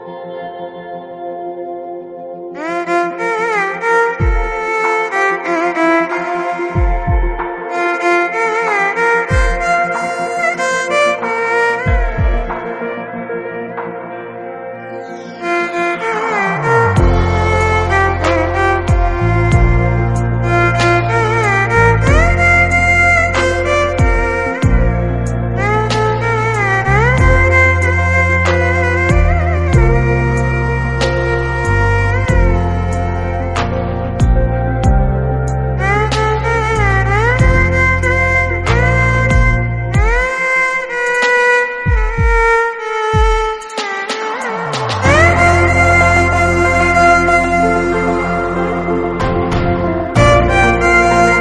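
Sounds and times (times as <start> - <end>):
violin melody: 0.0 - 51.4.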